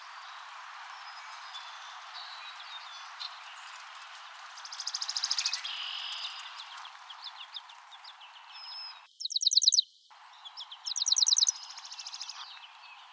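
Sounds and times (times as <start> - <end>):
faint background noise: 0.0 - 13.1
Chipping sparrow Spizella passerina song trills: 0.2 - 13.1
other bird chirps: 4.7 - 12.6.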